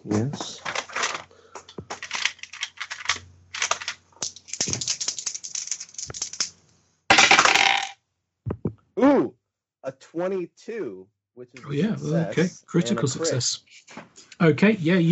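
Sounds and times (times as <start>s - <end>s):
dice rolling on a hard table in a tabletop game: 1.8s - 8.0s
speech: 10.2s - 13.8s, 14.4s - 15.1s.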